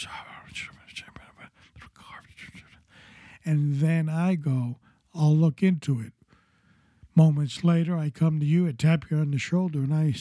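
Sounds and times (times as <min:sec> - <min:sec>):
speech: 0:00.0 - 0:00.8, 0:03.4 - 0:06.2, 0:07.2 - 0:10.1
person whispering into a person's ear: 0:00.0 - 0:03.7.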